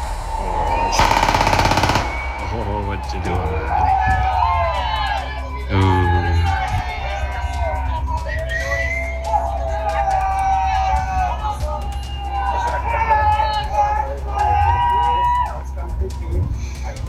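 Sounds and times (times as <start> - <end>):
people talking and shouting: 0.0 - 17.0
rapid burst of automatic-weapon gunfire: 1.0 - 2.5
scattered single gunshots: 1.0 - 2.6.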